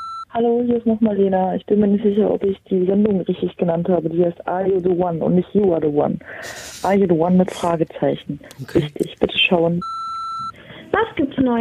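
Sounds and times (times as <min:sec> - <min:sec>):
voicemail recording beep: 0:00.0 - 0:00.3, 0:09.8 - 0:10.6
soft noise: 0:00.2 - 0:11.5
speech: 0:00.4 - 0:10.0, 0:10.9 - 0:11.5.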